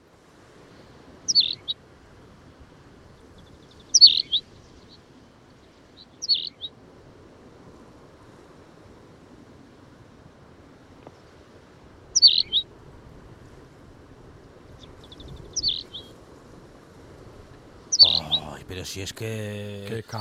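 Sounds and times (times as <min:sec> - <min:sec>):
small bird singing short high chirping phrases: 0:01.3 - 0:01.7, 0:03.8 - 0:04.4, 0:06.2 - 0:06.7, 0:12.2 - 0:12.6, 0:14.8 - 0:16.1
speech: 0:18.8 - 0:20.1.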